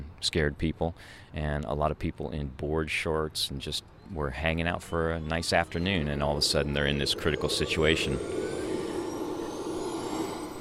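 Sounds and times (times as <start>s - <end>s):
speech: 0.2s - 8.6s
Chinook helicopter turbine engines roaring as they power up: 4.3s - 10.6s.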